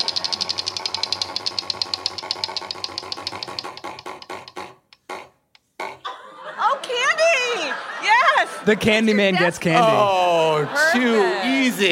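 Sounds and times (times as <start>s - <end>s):
prize wheel clicker ticking on a panel quiz show: 0.0s - 5.7s
laughter: 6.0s - 11.8s
speech: 8.7s - 11.8s.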